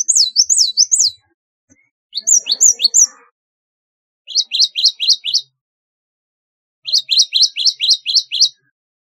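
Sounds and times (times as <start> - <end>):
Java sparrow singing sharp high chirps: 0.0 - 3.3, 4.3 - 5.6, 6.8 - 8.7.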